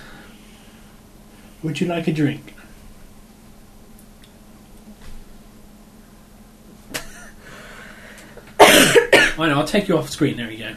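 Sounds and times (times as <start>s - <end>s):
speech: 1.6s - 2.6s, 9.4s - 10.7s
person coughing: 8.6s - 9.4s.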